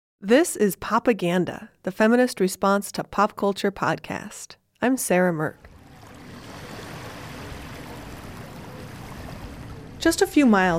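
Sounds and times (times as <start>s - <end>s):
speech: 0.2s - 5.7s, 10.0s - 10.7s
small waves of the Columbia River lapping at Collins Beach: 5.6s - 10.7s.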